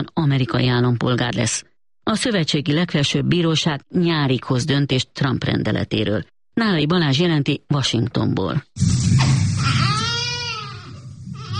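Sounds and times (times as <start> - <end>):
speech: 0.0 - 9.3
newborn baby crying: 9.6 - 11.5.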